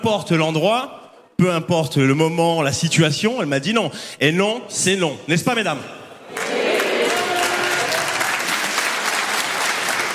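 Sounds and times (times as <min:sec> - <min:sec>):
speech: 0:00.0 - 0:06.5
dense overlapping applause from an audience of mostly women: 0:06.3 - 0:10.1.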